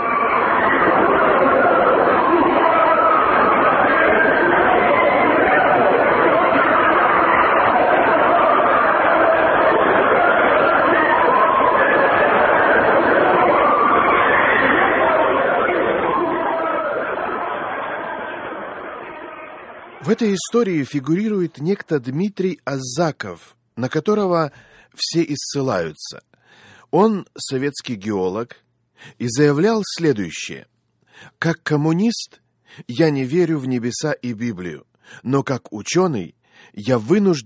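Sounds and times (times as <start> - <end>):
men and women crying out and wailing: 0.0 - 19.6
crowd roar: 0.0 - 20.7
speech: 20.2 - 26.3, 26.9 - 37.4.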